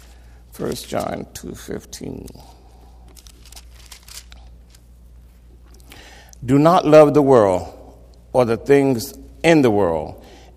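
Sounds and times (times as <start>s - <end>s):
many Bible pages turning and rustling across a room: 0.0s - 2.4s, 3.0s - 5.8s
low steady hum: 0.0s - 10.5s
speech: 0.6s - 2.6s, 6.4s - 7.8s, 8.4s - 10.5s.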